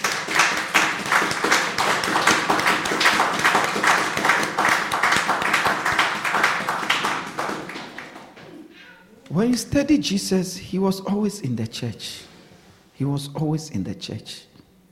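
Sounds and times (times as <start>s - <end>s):
crowd applauding: 0.0s - 8.6s
speech: 9.6s - 12.3s, 13.0s - 14.5s.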